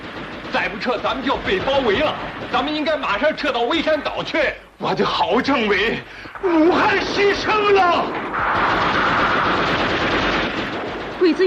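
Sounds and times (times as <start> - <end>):
machine-gun fire sound effect in a wartime battle drama: 0.0 - 3.9, 6.5 - 11.4
speech: 0.6 - 9.2, 11.2 - 11.4.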